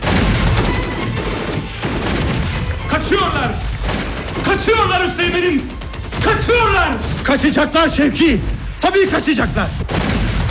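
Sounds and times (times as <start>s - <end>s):
heavy gunfire in a battle scene: 0.0s - 10.4s
speech: 3.0s - 3.7s, 4.4s - 10.0s.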